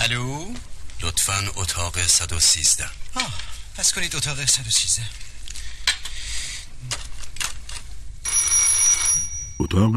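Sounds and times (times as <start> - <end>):
speech: 0.1 - 5.3, 9.6 - 9.9
telephone ringing with bright metallic bursts: 8.2 - 9.8.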